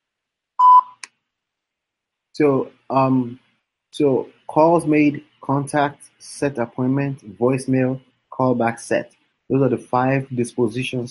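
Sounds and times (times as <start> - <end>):
telephone keypad DTMF tone at a voicemail prompt: 0.6 - 1.0
speech: 2.4 - 11.0.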